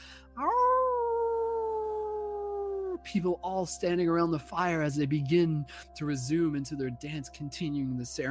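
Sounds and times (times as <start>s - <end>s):
person imitating a wolf howl during a ceremony around a fire: 0.4s - 3.0s
speech: 3.1s - 8.3s.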